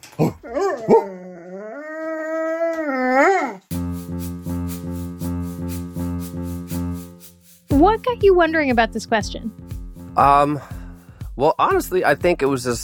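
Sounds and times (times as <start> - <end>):
dog howling: 0.4 - 3.6
rapid rhythmic pulsing tones: 3.7 - 12.8
speech: 7.8 - 9.6, 10.2 - 10.7, 11.4 - 12.8.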